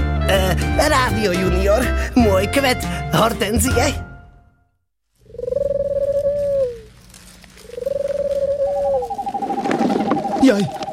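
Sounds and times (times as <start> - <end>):
speech: 0.3 - 4.1, 10.4 - 10.8
owl hooting: 5.2 - 10.9.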